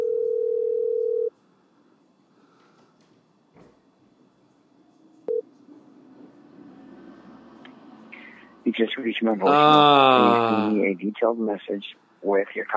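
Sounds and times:
phone line ringback tone on the caller's end: 0.0s - 1.3s
speech: 8.7s - 12.7s.

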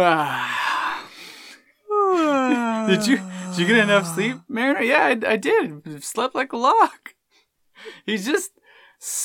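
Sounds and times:
speech: 0.0s - 0.6s, 2.9s - 7.1s, 7.8s - 9.2s
person yawning: 1.9s - 4.4s.

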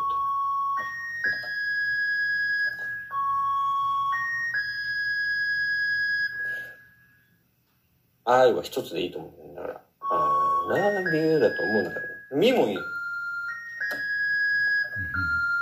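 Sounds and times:
short melody of high sustained notes on a keyboard: 0.0s - 6.7s, 10.0s - 15.6s
speech: 8.3s - 9.8s, 10.7s - 13.0s.

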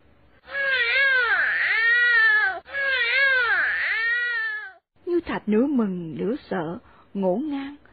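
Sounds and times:
newborn baby crying: 0.5s - 4.8s
speech: 5.4s - 7.8s.

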